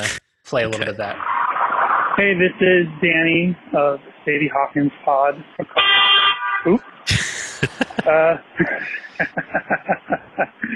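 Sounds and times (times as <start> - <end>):
laughter: 0.0 - 1.1, 7.1 - 10.7
indistinct voices: 0.0 - 1.2, 2.2 - 5.8, 6.7 - 10.7
speech: 0.0 - 1.3, 2.2 - 10.7
car horn honking as someone pulls into a driveway: 5.7 - 7.1.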